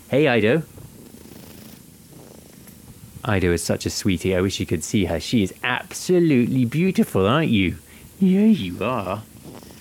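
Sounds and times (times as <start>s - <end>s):
speech: 0.1s - 0.8s, 3.2s - 9.3s
cat purring: 0.7s - 3.4s, 8.5s - 9.7s.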